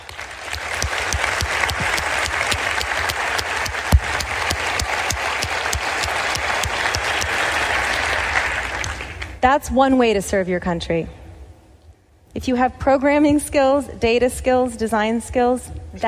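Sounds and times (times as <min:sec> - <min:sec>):
room full of people clapping steadily: 0:00.0 - 0:09.4
speech: 0:09.4 - 0:11.2, 0:12.4 - 0:16.0.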